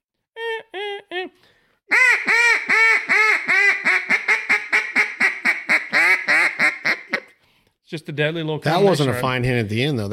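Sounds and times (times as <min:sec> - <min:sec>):
duck call imitating a hen mallard quacking: 0:01.9 - 0:07.4
speech: 0:07.9 - 0:10.1.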